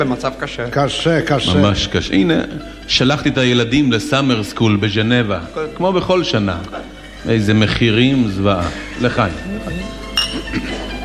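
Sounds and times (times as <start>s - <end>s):
speech: 0.0s - 10.0s
glasses clinking in a toast at a meal: 9.7s - 11.0s.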